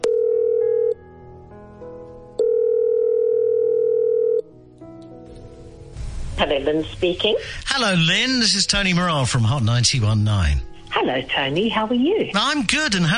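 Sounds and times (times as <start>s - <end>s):
buzzing telephone ringing tone on an outgoing call: 0.0s - 1.0s, 2.4s - 4.5s
faint music: 0.0s - 13.1s
speech: 6.4s - 13.1s.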